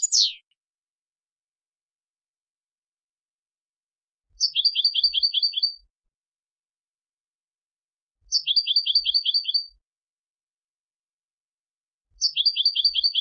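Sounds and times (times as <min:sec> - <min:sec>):
European goldfinch Carduelis carduelis singing: 0:00.0 - 0:00.4, 0:04.4 - 0:05.8, 0:08.3 - 0:09.6, 0:12.2 - 0:13.1.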